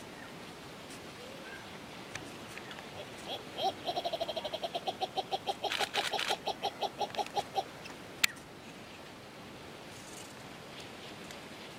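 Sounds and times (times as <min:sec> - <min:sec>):
Ruspoli's turaco song of hoarse croaking notes: 0:02.8 - 0:07.9.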